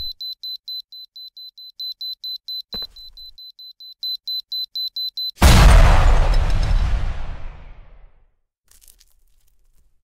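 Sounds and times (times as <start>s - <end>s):
fight sound effects: 5.4s - 8.1s.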